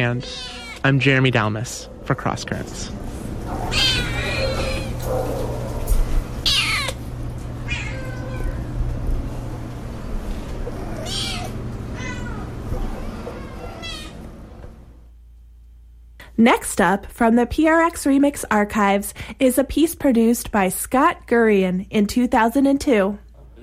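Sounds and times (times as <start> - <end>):
cat meowing: 0.0 - 0.8, 3.7 - 5.0, 6.4 - 7.0, 7.6 - 8.8, 10.8 - 14.3
speech: 0.0 - 3.0, 16.4 - 23.2
steady low hum: 0.0 - 23.6.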